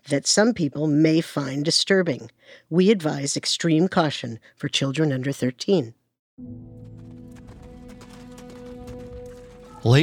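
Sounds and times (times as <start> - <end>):
speech: 0.1 - 7.0, 9.8 - 10.0
horse hooves clip-clopping pulling a carriage: 6.6 - 10.0.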